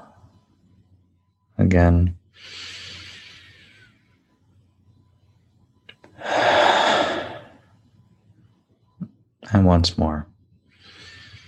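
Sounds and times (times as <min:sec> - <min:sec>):
speech: 0:01.6 - 0:02.7, 0:09.6 - 0:10.3
deep breathing: 0:02.4 - 0:04.1, 0:06.1 - 0:07.6, 0:10.7 - 0:11.4.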